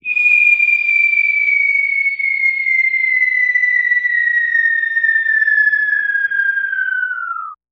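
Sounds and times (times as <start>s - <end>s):
bomb whistle: 0.0s - 7.6s.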